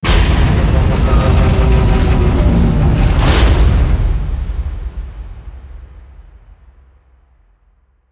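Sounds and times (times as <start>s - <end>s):
airlock closing: 0.0s - 5.7s.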